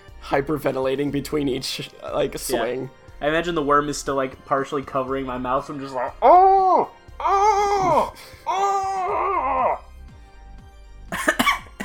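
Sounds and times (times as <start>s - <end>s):
speech: 0.3s - 8.6s
drawn-out wavering scream-like vocal: 6.2s - 9.8s
harsh coughs: 11.1s - 11.8s.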